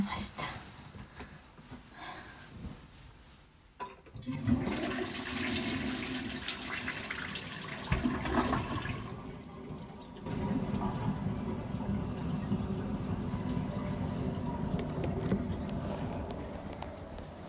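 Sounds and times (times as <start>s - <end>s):
toilet flushing after use: 4.1s - 17.4s.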